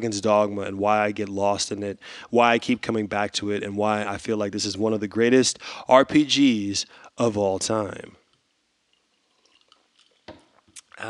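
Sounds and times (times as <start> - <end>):
speech: 0.0 - 8.2
liquid dripping and sloshing in a glass of watermelon vodka: 8.9 - 10.9.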